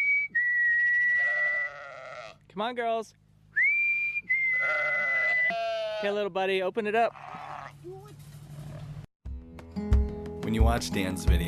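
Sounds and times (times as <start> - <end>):
long steady high-pitched whistles: 0.0 - 1.2, 3.6 - 4.7
single wavering sheep bleat: 1.0 - 2.4, 4.5 - 6.3, 7.0 - 7.9
speech: 2.6 - 3.2, 5.5 - 8.1, 10.5 - 11.4.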